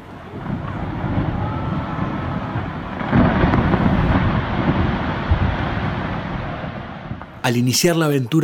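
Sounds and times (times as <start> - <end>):
distant thunder rumbling in Southern Patagonia: 0.0 - 7.5
speech: 7.5 - 8.4.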